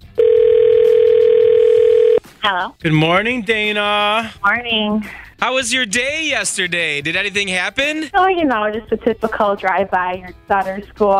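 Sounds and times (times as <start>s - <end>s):
telephone dial tone while placing a call: 0.2s - 2.2s
speech: 2.4s - 11.1s.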